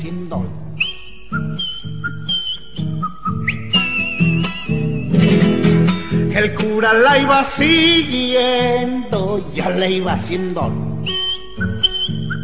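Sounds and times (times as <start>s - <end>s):
speech: 0.0s - 0.6s, 6.4s - 11.2s
person whistling a folk-style tune: 0.8s - 5.4s, 11.0s - 12.4s.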